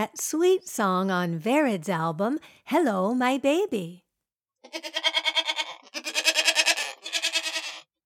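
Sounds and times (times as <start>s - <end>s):
speech: 0.0s - 4.0s, 4.6s - 5.1s
goats bleating: 4.6s - 7.9s.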